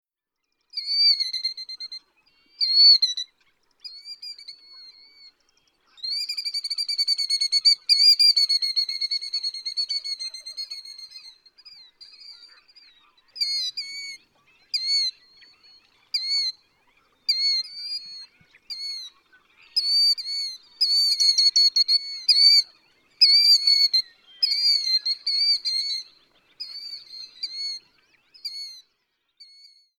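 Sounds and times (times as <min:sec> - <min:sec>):
killdeer calling: 0:00.7 - 0:28.9.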